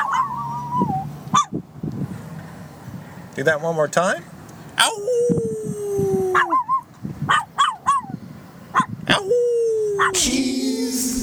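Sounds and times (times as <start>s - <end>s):
dog yelping: 0.0s - 1.6s, 4.8s - 10.3s
speech: 3.4s - 5.5s
dog howling: 4.8s - 8.1s, 8.8s - 10.8s.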